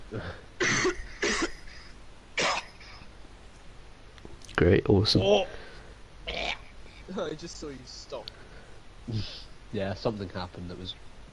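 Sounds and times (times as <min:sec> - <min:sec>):
speech: 0:00.1 - 0:00.4, 0:04.6 - 0:05.6, 0:07.1 - 0:08.4, 0:09.1 - 0:11.1
person coughing: 0:00.2 - 0:03.0.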